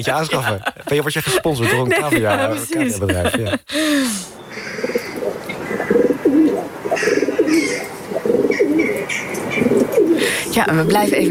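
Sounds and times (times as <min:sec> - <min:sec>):
laughter: 0:00.0 - 0:04.2
speech: 0:00.0 - 0:04.4, 0:10.6 - 0:11.2
pigeon cooing down a chimney: 0:04.5 - 0:10.5.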